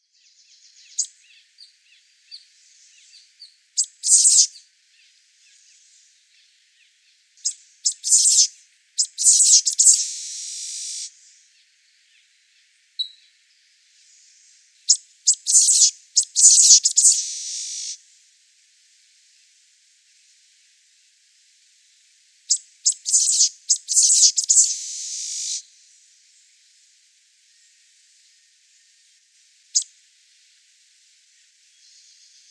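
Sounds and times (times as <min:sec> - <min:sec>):
Black-faced Grassquit Tiaris bicolor calling in Guadeloupe: 0:00.3 - 0:18.0, 0:22.4 - 0:25.8, 0:29.5 - 0:30.6, 0:31.3 - 0:32.4.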